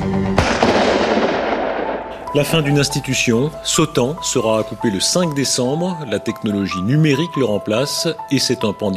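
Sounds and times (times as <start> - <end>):
sustained tonal backdrop: 0.1 - 6.0
gunshots: 0.4 - 2.6
dense crackling wash: 0.4 - 3.1
speech: 2.3 - 8.9.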